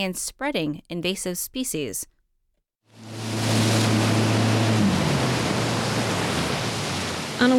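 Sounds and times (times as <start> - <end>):
speech: 0.0 - 2.1, 7.4 - 7.5
loud steady rush of water and spray on a lake: 2.9 - 7.5
wake surfing motorboat engine drone on a lake: 2.9 - 7.5.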